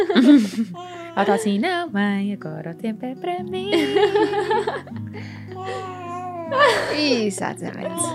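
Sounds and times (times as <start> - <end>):
laughter: 0.0 - 1.4, 3.7 - 8.1
speech: 0.0 - 8.1
baby girl babbling and singing: 0.8 - 1.2, 5.6 - 6.5, 7.9 - 8.1.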